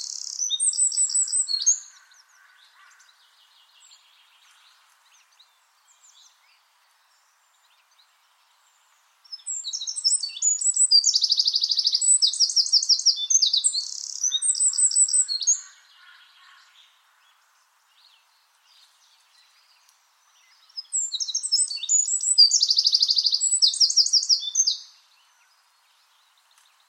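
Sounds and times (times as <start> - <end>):
bird song with high chirps and buzzy trilled phrases: 0.0 - 26.8.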